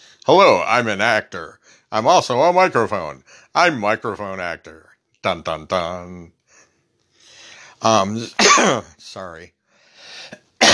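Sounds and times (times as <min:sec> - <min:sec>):
speech: 0:00.3 - 0:06.4, 0:07.8 - 0:10.4
breathy sound: 0:03.2 - 0:03.6, 0:06.5 - 0:08.2, 0:09.8 - 0:10.5
person coughing: 0:08.2 - 0:09.0, 0:10.2 - 0:10.7.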